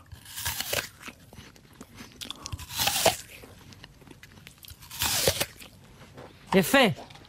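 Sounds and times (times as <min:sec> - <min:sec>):
crisp bites into a juicy apple: 0:00.0 - 0:07.2
soft chewing crackles of apple: 0:00.0 - 0:07.2
speech: 0:06.5 - 0:07.1.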